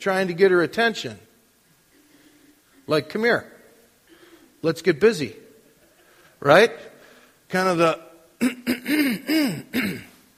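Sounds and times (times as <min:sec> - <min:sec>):
speech: 0:00.0 - 0:01.3, 0:02.9 - 0:03.5, 0:04.6 - 0:05.4, 0:06.4 - 0:06.9, 0:07.5 - 0:10.1
person clearing throat: 0:08.4 - 0:10.2.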